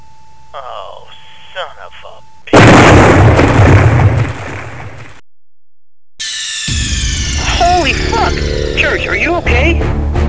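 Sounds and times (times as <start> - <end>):
speech: 1.6 - 3.8, 8.3 - 10.1
main cannon firing: 2.5 - 5.2
brief bright electronic noise: 6.2 - 9.7.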